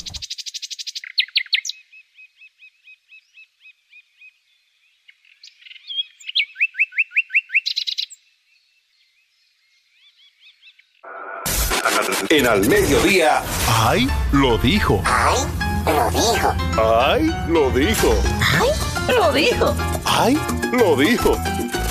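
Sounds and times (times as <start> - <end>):
nightingale singing: 0.1 - 11.0
burst of broadband noise: 11.1 - 14.6
speech: 12.3 - 21.8.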